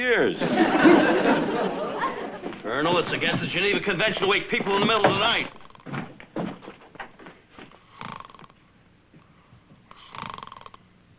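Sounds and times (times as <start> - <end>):
speech: 0.0 - 1.9, 2.7 - 5.6
laughter: 0.4 - 3.9
soft shuffling sounds: 2.0 - 7.9
man snoring loudly: 7.9 - 8.6, 9.9 - 10.8.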